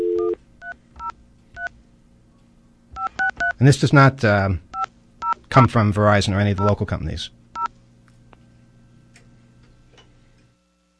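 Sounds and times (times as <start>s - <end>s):
telephone dial tone: 0.0s - 0.4s
telephone touch-tone dialing two-note beeps: 3.0s - 3.6s
speech: 3.6s - 4.6s, 5.5s - 7.4s.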